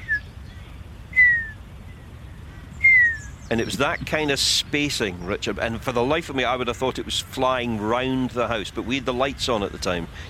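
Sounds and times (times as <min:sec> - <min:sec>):
person whistling an imitation of a bird call: 0:00.0 - 0:00.2, 0:01.2 - 0:01.6, 0:02.8 - 0:03.3
speech: 0:03.5 - 0:10.2.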